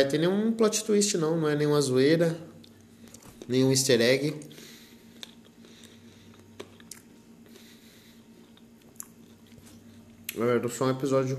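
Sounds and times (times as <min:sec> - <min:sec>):
speech: 0:00.0 - 0:02.5, 0:03.5 - 0:04.7, 0:10.4 - 0:11.3
chewing and biting on a guava: 0:05.1 - 0:10.4.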